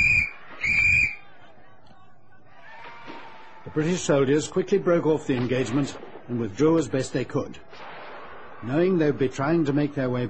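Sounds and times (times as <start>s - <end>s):
shrill whistle blasts: 0.0s - 1.3s
speech: 3.7s - 7.9s, 8.6s - 10.2s.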